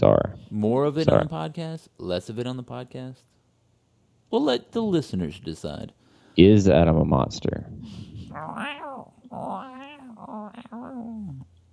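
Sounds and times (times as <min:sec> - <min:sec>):
speech: 0:00.0 - 0:03.4, 0:04.3 - 0:11.5
voice imitating a growling stomach: 0:08.3 - 0:11.5.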